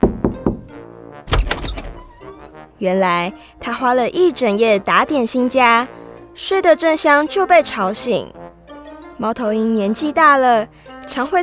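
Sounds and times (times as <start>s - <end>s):
knocking on a door: 0.0s - 2.2s
door creaking open: 1.3s - 2.4s
speech: 2.8s - 8.4s, 9.2s - 11.4s.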